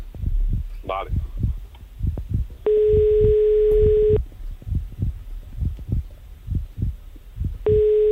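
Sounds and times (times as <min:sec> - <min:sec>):
soft rhythmic throbbing pulse: 0:00.0 - 0:08.1
speech: 0:00.9 - 0:01.3
telephone ringback tone in long steady beeps: 0:02.7 - 0:04.2, 0:07.7 - 0:08.1.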